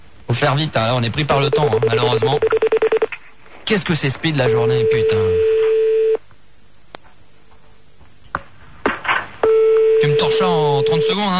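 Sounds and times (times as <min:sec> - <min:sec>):
speech: 0:00.4 - 0:03.1, 0:03.7 - 0:05.5
telephone line tone while calling: 0:01.5 - 0:03.1, 0:04.4 - 0:06.2, 0:09.4 - 0:11.3.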